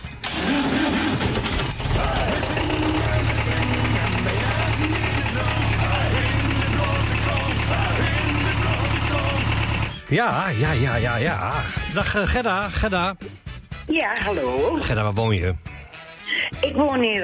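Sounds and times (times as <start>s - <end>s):
tractor engine turning over and idling: 0.1s - 10.1s
speech: 10.1s - 15.7s, 16.6s - 17.2s.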